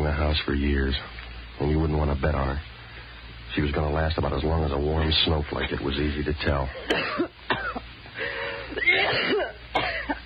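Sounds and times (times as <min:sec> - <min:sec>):
speech: 0:00.3 - 0:02.7, 0:03.6 - 0:09.5
person coughing in harsh raspy bursts: 0:06.8 - 0:07.8, 0:08.8 - 0:10.2
strained wheezy breathing with throat rasping: 0:08.1 - 0:08.9.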